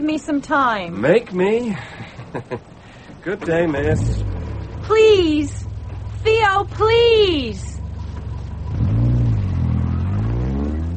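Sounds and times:
speech: 0:00.0 - 0:05.6, 0:06.2 - 0:07.7
car engine revving as the car drives off: 0:03.1 - 0:10.9.

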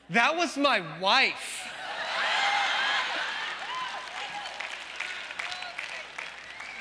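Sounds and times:
speech: 0:00.1 - 0:01.7
crowd applauding: 0:02.3 - 0:06.8.

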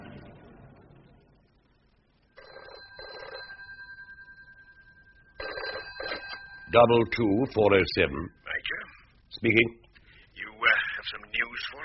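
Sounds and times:
telephone bell ringing: 0:02.4 - 0:07.3
speech: 0:06.7 - 0:08.4, 0:09.4 - 0:09.8.

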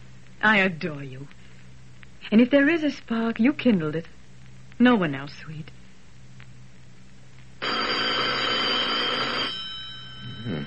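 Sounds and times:
speech: 0:00.4 - 0:01.4, 0:02.2 - 0:04.2, 0:04.8 - 0:05.8
old-fashioned telephone bell ringing: 0:07.6 - 0:10.6.

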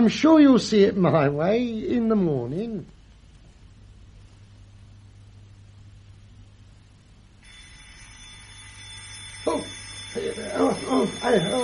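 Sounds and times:
speech: 0:00.0 - 0:03.0, 0:09.5 - 0:11.6
alarm clock ringing: 0:07.4 - 0:11.6.

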